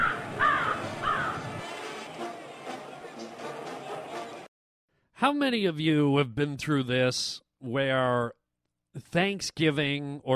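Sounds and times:
crows cawing: 0.0s - 1.5s
speech: 5.2s - 8.4s, 9.0s - 10.3s.

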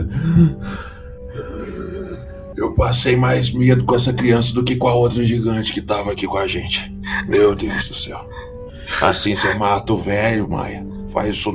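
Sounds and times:
person imitating heavy labored panting: 0.0s - 2.3s, 7.1s - 9.6s
speech: 0.4s - 0.9s, 2.8s - 11.5s.

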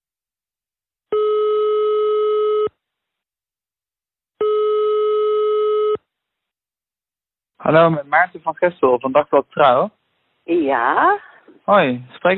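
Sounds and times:
telephone ringing tone while placing a call: 1.1s - 2.8s, 4.4s - 6.1s
speech: 7.7s - 12.3s.

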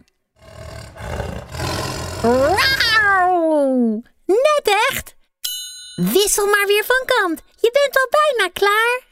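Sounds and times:
voice imitating a growling tiger with teeth clenched: 0.4s - 3.5s
speech: 2.2s - 2.8s, 3.4s - 5.2s, 6.0s - 9.1s.

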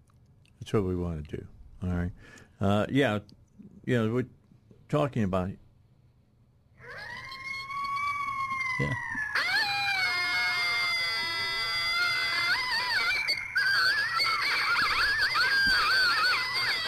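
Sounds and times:
speech: 0.6s - 5.6s, 8.8s - 9.2s
several coyotes howling and yipping: 6.8s - 16.8s.

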